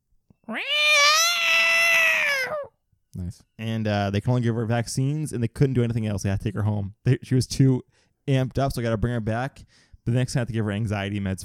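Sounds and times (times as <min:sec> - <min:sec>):
speech: 0:00.5 - 0:00.9, 0:03.2 - 0:11.4
person imitating a cat screaming at the vet: 0:00.5 - 0:02.7.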